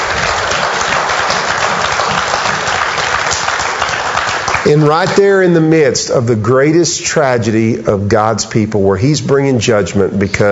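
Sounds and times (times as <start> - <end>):
large crowd clapping: 0.0 - 5.7
speech: 4.7 - 10.5.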